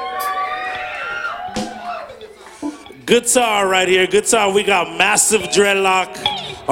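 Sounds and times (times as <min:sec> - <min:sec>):
overlapping shouts, whoops and whistles from a live audience: 0:00.0 - 0:02.2
live audience cheering at a band performance: 0:00.0 - 0:02.4
speech: 0:03.1 - 0:06.7.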